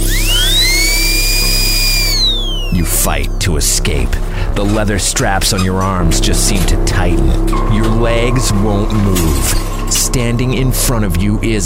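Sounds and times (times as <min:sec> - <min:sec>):
dental drill whining at a high pitch: 0:00.0 - 0:03.0
low hum: 0:00.0 - 0:11.6
speech: 0:03.0 - 0:11.6.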